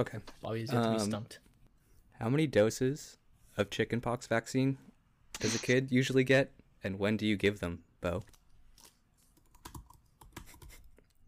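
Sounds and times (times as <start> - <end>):
speech: 0.0 - 1.5, 2.2 - 8.4
typing on a computer keyboard: 9.4 - 10.8.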